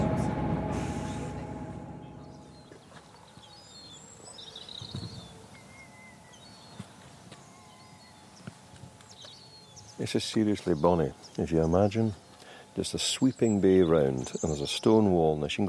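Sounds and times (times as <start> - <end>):
rail clacks: 0.0 - 3.0
train rumbling along a railway line on the west coast of Scotland: 0.0 - 3.8
speech: 10.0 - 12.2, 12.8 - 15.6.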